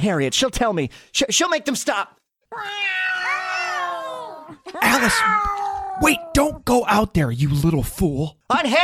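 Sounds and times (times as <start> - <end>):
speech: 0.0 - 3.0, 4.5 - 8.8
cats yowling: 2.5 - 6.4.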